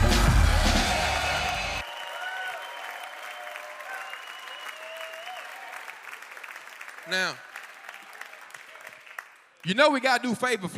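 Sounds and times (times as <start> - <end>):
congregation applauding and cheering at a church service: 0.0 - 10.2
speech: 7.1 - 7.5, 9.6 - 10.7.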